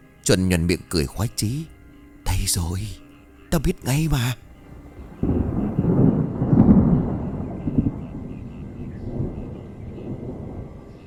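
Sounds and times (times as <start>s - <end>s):
speech: 0.2s - 1.7s, 2.3s - 4.4s
dry thunder rumbling: 4.6s - 11.0s.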